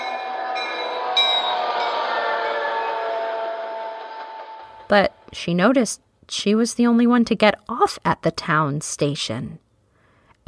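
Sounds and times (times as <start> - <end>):
high metallic whine of train wheels or brakes: 0.0 - 5.7
train rumbling arriving at station: 0.0 - 6.0
speech: 4.9 - 9.6.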